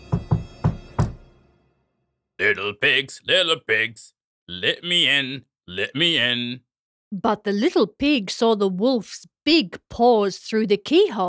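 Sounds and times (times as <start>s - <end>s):
knocking on a door: 0.0s - 1.3s
speech: 2.4s - 11.2s.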